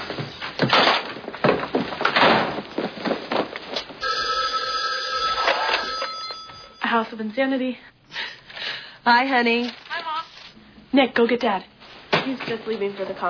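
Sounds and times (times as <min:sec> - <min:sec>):
loud clattering and thumping: 0:00.0 - 0:04.0
telephone bell ringing: 0:04.0 - 0:07.1
speech: 0:07.0 - 0:08.3, 0:09.0 - 0:09.8, 0:10.9 - 0:13.2.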